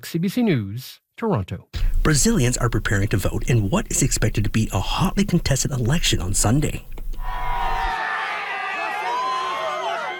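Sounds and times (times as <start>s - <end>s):
speech: 0.0s - 6.9s
large crowd cheering and shouting at political rally: 7.2s - 10.1s.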